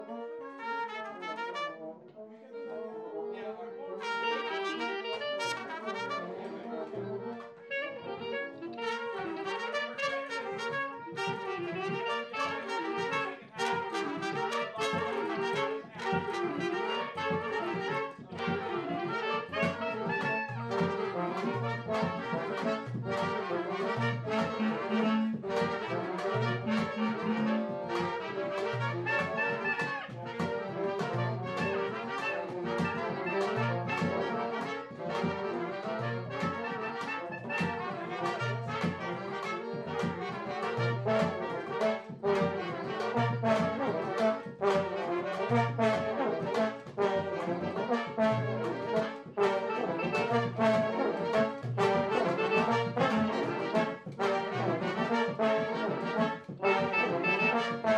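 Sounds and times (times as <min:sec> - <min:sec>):
shuffle music rehearsal in Thailand: 0:00.0 - 0:57.9.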